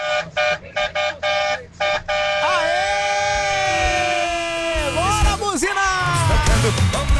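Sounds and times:
loud vehicle horn honking: 0.0 - 2.8
person shouting: 2.4 - 6.6.

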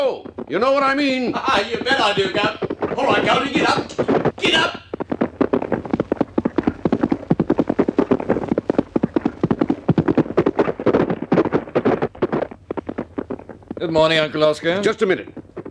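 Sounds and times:
speech: 0.0 - 4.8, 13.8 - 15.4
horse hooves galloping hard on a track: 0.0 - 15.7.

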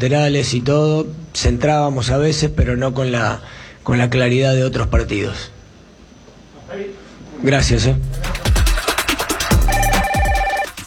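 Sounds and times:
speech: 0.0 - 5.5, 6.7 - 8.4
rhythmic thumping beat: 7.9 - 10.8
telephone ringing for an incoming call to a radio show: 9.6 - 10.8.

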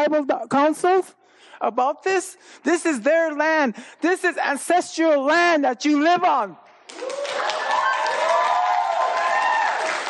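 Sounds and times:
speech: 0.0 - 7.4
crowd clapping: 6.9 - 10.0.

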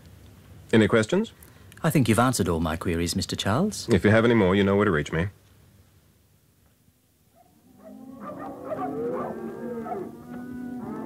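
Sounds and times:
speech: 0.7 - 5.4
cattle lowing during a roundup in the West Paddock at Broadmeadows: 7.5 - 11.0.

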